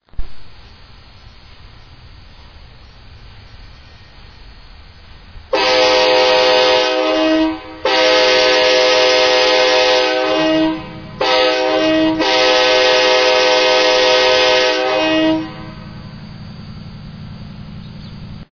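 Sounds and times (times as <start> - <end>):
horn: 5.5 - 15.8.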